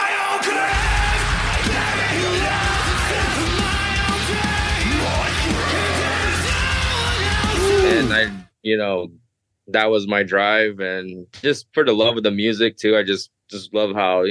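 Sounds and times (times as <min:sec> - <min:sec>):
harsh metal vocal scream: 0:00.0 - 0:08.4
dense distorted heavy music with pounding low end: 0:00.3 - 0:08.5
speech: 0:08.0 - 0:14.3.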